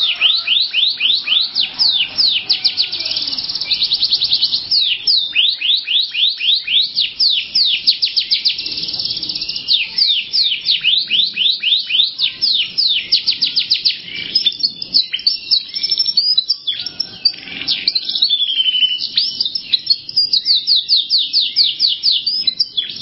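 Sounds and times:
canary singing trills: 0.0s - 23.0s.

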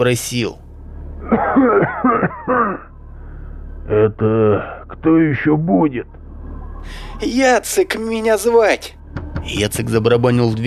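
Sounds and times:
speech: 0.0s - 0.6s, 1.3s - 2.9s, 3.9s - 6.2s, 6.8s - 10.6s
hoarse coughs behind a door: 1.3s - 2.9s.

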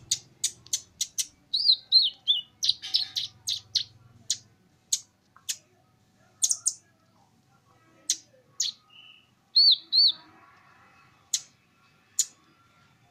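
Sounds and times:
small bird chirping and twittering: 0.0s - 5.7s, 6.4s - 6.9s, 8.0s - 10.3s, 11.0s - 13.1s.

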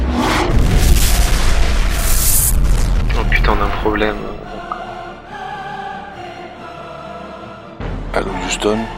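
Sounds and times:
torpedo fired from a submarine in a video game: 0.1s - 4.5s
speech: 3.9s - 4.4s, 8.6s - 8.9s.

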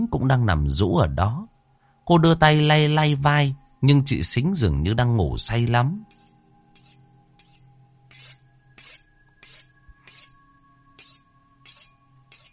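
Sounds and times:
speech: 0.0s - 1.5s, 2.1s - 6.2s
knife being sharpened: 6.1s - 10.3s, 11.0s - 12.5s.

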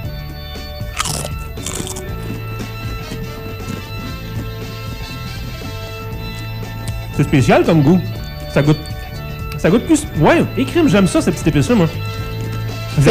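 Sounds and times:
person crunching sour cream and onion vegetable chips while tasting: 0.9s - 2.4s
speech: 7.2s - 8.9s, 9.6s - 12.1s.

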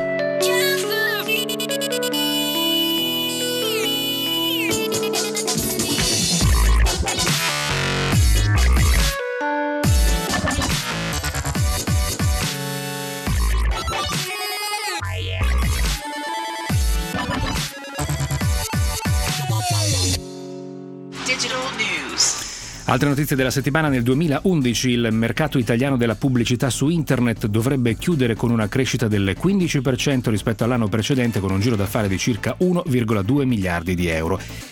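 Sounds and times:
electronic remix of a phone ringtone: 0.0s - 20.3s
speech: 22.9s - 34.7s.

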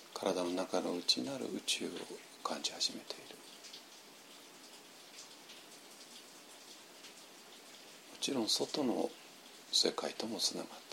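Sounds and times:
morning rain falling in Kyoto: 0.0s - 10.9s
speech: 0.2s - 3.6s, 8.2s - 10.9s.

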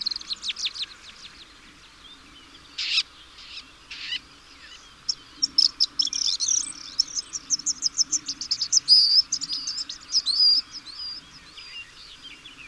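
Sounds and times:
bird twittering: 2.8s - 12.0s.

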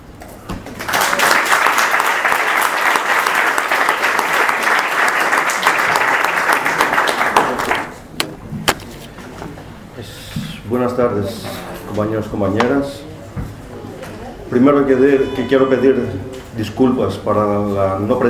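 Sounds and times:
audience applause at a talk in a university faculty of economic sciences: 0.8s - 8.2s
speech: 10.8s - 13.1s, 14.5s - 18.2s.

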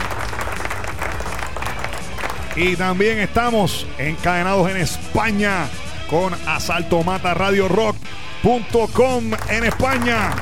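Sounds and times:
crowd applause: 0.0s - 2.6s, 9.3s - 10.4s
speech: 2.6s - 10.4s.

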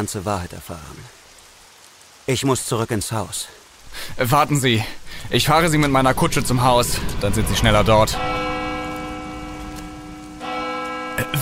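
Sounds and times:
speech: 0.0s - 1.2s, 2.3s - 8.4s
soft rain: 0.0s - 11.3s
church bell ringing: 5.8s - 11.3s.

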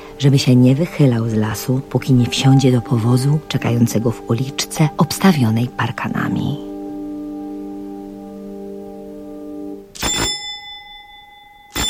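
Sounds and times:
steady droning tone: 0.0s - 10.0s
speech: 0.2s - 6.7s
hallway doorbell ringing in metallic bursts: 10.0s - 11.8s.

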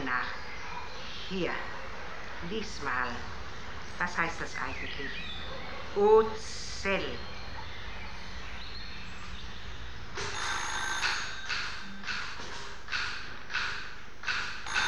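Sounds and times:
hiss: 0.0s - 14.8s
speech: 1.3s - 1.8s, 2.4s - 3.4s, 4.0s - 7.3s
telephone bell ringing: 10.2s - 11.8s.

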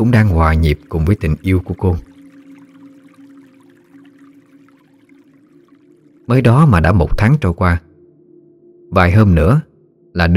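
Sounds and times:
speech: 0.0s - 2.1s, 6.3s - 7.9s, 8.9s - 10.3s
babbling stream: 0.0s - 7.2s
sustained low hum: 0.0s - 10.3s.

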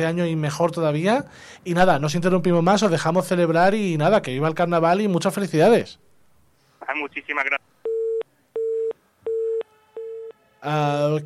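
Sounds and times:
speech: 0.0s - 6.0s, 6.9s - 7.7s, 10.6s - 11.2s
telephone busy tone after a call was cut off: 7.9s - 10.4s.

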